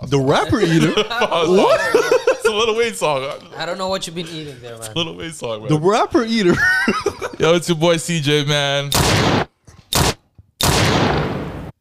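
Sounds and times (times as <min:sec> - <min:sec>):
speech: 0:00.1 - 0:09.4
laughter: 0:00.3 - 0:07.6
gunshot blasts: 0:08.9 - 0:11.7.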